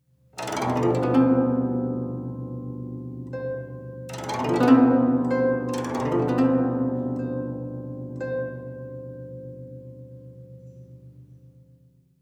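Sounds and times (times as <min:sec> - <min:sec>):
guzheng: 0:00.4 - 0:11.6.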